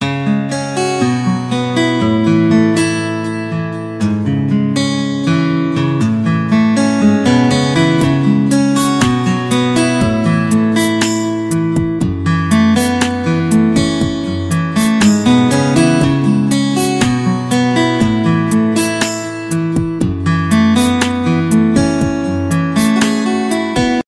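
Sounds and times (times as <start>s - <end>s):
acoustic guitar ringtone: 0.0s - 24.0s.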